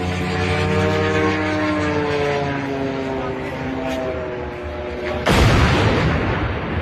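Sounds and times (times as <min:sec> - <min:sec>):
attack drone engine whine over a suburb: 0:00.0 - 0:06.8
attack drone crashing into a huge construction crane: 0:05.2 - 0:06.8.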